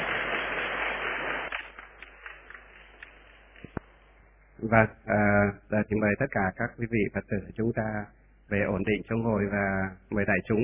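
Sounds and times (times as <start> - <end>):
crowd of Buddhist followers applauding at a dharma assembly in Vietnam: 0.0 - 2.7
speech: 4.6 - 10.6.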